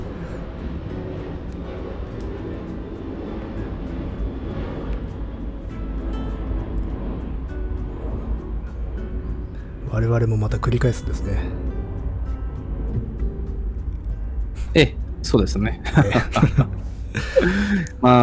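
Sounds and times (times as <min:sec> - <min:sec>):
airplane flying overhead: 0:00.0 - 0:18.2
speech: 0:10.0 - 0:11.7, 0:14.8 - 0:18.2
laughter: 0:15.8 - 0:18.0.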